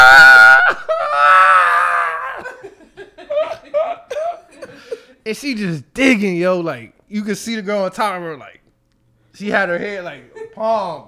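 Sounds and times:
person imitating a horror-movie scream: 0:00.0 - 0:02.6
short choppy bursts of laughter: 0:02.2 - 0:05.1
speech: 0:05.3 - 0:08.6, 0:09.4 - 0:11.0.

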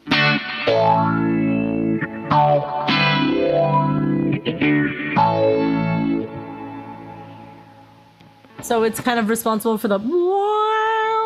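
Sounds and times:
electric guitar played through a vibrato effects pedal: 0:00.0 - 0:09.4
speech: 0:08.7 - 0:10.3.

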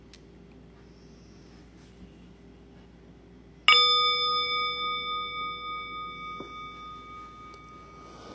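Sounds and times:
meditation bell struck and ringing: 0:03.6 - 0:08.3.

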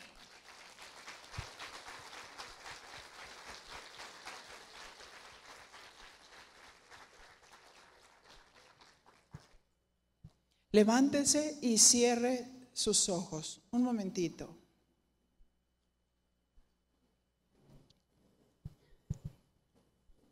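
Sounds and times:
audience applauding: 0:00.0 - 0:09.6
speech: 0:10.8 - 0:14.6.

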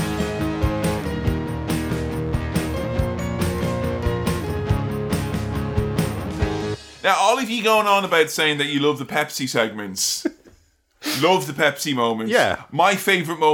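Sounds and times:
bright instrumental theme jingle for a mailbag segment: 0:00.0 - 0:07.0
speech: 0:07.0 - 0:10.4, 0:11.1 - 0:13.5.

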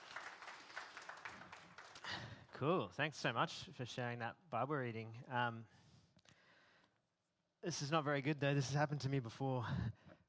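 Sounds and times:
crowd applauding: 0:00.0 - 0:02.4
speech: 0:02.6 - 0:05.8, 0:07.6 - 0:10.0.

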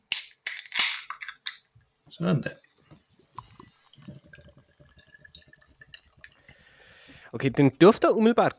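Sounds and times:
8% alcohol beer bottle or can being opened: 0:00.0 - 0:01.0
speech: 0:02.1 - 0:02.7, 0:07.3 - 0:08.5
8% alcohol beer being poured into glass: 0:03.3 - 0:07.1.

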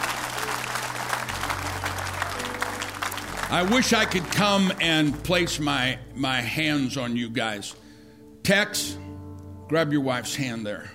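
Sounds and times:
congregation clapping at a church service: 0:00.0 - 0:05.7
speech: 0:03.5 - 0:07.8, 0:08.5 - 0:09.1, 0:09.7 - 0:10.9.

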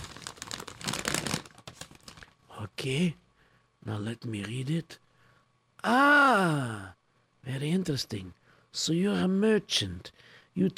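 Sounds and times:
paper crinkling as a folded note is unfolded: 0:00.0 - 0:02.4
speech: 0:02.6 - 0:03.2, 0:03.8 - 0:05.0, 0:05.8 - 0:10.7.

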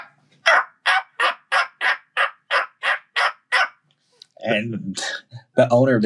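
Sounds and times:
person's voice imitating a turkey slate call: 0:00.0 - 0:03.8
speech: 0:04.4 - 0:06.0.

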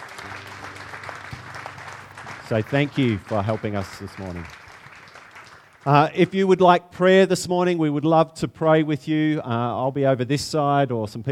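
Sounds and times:
congregation clapping: 0:00.0 - 0:06.4
speech: 0:02.5 - 0:04.6, 0:05.8 - 0:11.3.

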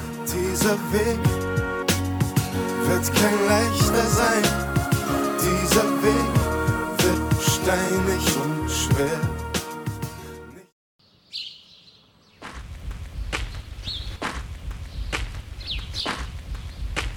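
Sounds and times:
brief burst of music: 0:00.0 - 0:10.6
speech: 0:00.6 - 0:01.5, 0:02.9 - 0:04.8, 0:05.7 - 0:06.4, 0:07.7 - 0:09.3
birds chirping in a garden in spring sunshine: 0:11.0 - 0:14.2, 0:14.8 - 0:17.1
man's footsteps crunching in a garden: 0:12.4 - 0:17.1.

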